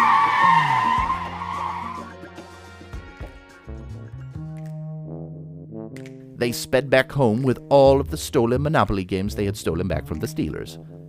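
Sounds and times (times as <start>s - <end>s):
truck tires skidding: 0.0s - 2.2s
speech: 6.4s - 10.9s.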